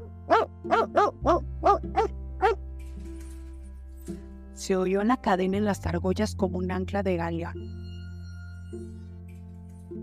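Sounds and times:
dog barking: 0:00.3 - 0:02.6
speech: 0:00.6 - 0:02.1, 0:04.7 - 0:07.8.

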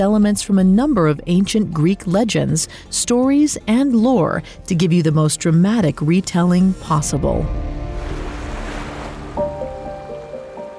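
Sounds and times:
speech: 0:00.0 - 0:07.8
gentle waves lapping on a rocky beach: 0:07.8 - 0:10.7.

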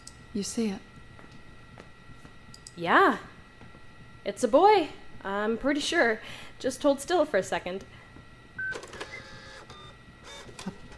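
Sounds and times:
speech: 0:00.4 - 0:00.9, 0:02.8 - 0:03.3, 0:04.2 - 0:08.0
printer printing an ultrasound image: 0:08.6 - 0:10.9.

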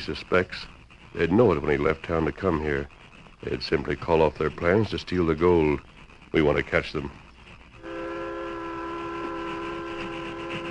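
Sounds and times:
speech: 0:00.0 - 0:07.2
train whistle: 0:07.8 - 0:10.6.

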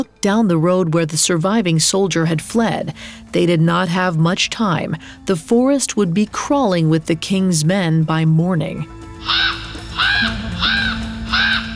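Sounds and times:
speech: 0:00.0 - 0:10.8
raven cawing harshly: 0:09.2 - 0:11.7.

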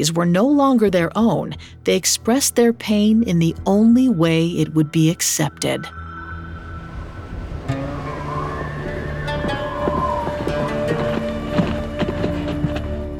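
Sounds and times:
speech: 0:00.0 - 0:06.0
steady sustained tonal hum: 0:02.9 - 0:12.4
horses' hooves clip-clopping: 0:08.7 - 0:13.1.

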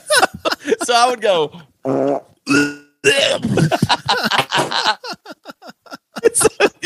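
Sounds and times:
laughter: 0:00.0 - 0:01.2, 0:03.4 - 0:06.8
speech: 0:00.8 - 0:02.2
person imitating farting noises with the mouth: 0:01.8 - 0:03.7.

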